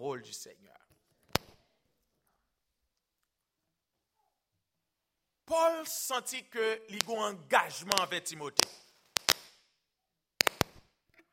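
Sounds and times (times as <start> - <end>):
speech: 0.1 - 0.9, 5.5 - 8.8
firecrackers popping: 1.3 - 1.6, 6.9 - 9.7, 10.4 - 11.0.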